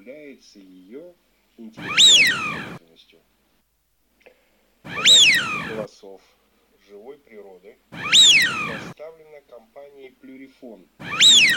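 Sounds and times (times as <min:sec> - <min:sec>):
Eurasian wigeon whistle used as hunting decoy lure: 0:01.8 - 0:02.8, 0:04.9 - 0:05.9, 0:08.0 - 0:09.0, 0:11.0 - 0:11.5.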